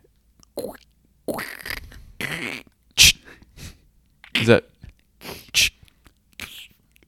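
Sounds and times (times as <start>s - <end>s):
voice imitating a can being cracked open with pop and fizz: 0.4s - 3.2s, 5.6s - 7.0s
speech: 0.6s - 1.8s, 4.4s - 4.7s.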